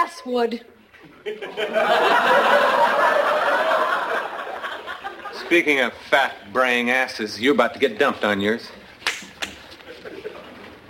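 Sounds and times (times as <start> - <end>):
speech: 0.2 - 4.3, 5.4 - 8.8
laughter: 1.0 - 5.7, 9.7 - 10.8
slap across the face: 9.0 - 9.6.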